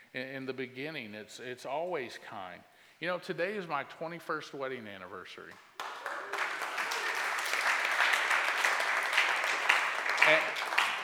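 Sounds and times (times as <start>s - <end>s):
speech: 0.1s - 5.7s
audience applause: 5.8s - 11.0s.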